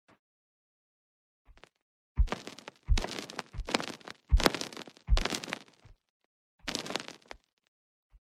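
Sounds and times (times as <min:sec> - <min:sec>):
glass texture: 0:02.3 - 0:05.8, 0:06.7 - 0:07.4.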